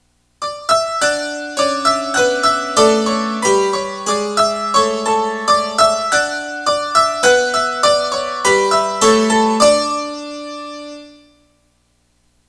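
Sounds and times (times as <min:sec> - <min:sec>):
JV-880 synthesizer piano: 0:00.4 - 0:11.2.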